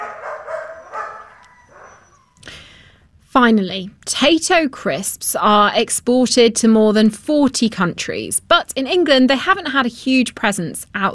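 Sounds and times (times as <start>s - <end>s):
dog barking: 0.0s - 2.2s
speech: 3.4s - 11.1s.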